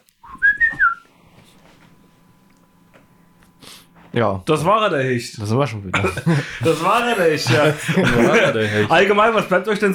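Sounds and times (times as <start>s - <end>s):
podcast jingle with whistled melody: 0.2s - 1.0s
speech: 4.2s - 9.9s
laughter: 5.9s - 9.6s.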